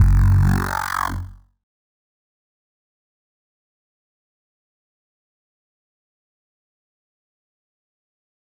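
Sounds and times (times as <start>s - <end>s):
weird dry bass: 0.0s - 1.4s.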